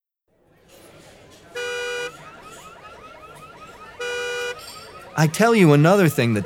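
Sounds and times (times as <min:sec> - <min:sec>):
car alarm blaring: 0:01.3 - 0:06.4
speech: 0:05.2 - 0:06.4.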